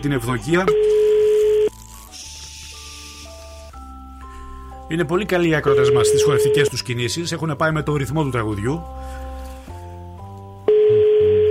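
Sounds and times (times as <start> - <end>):
speech: 0.0 - 1.0, 4.9 - 9.2
phone line electronic ringback tone: 0.7 - 1.7, 5.6 - 6.8, 10.7 - 11.4.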